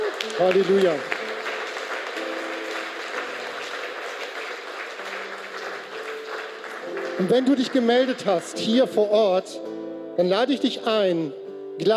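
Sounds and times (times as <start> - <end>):
large crowd applauding: 0.0 - 9.0
speech: 0.4 - 1.1, 7.2 - 11.9.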